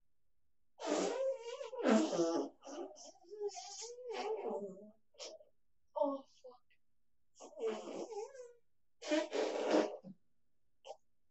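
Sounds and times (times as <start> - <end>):
fart: 0.8 - 4.6, 7.4 - 10.1.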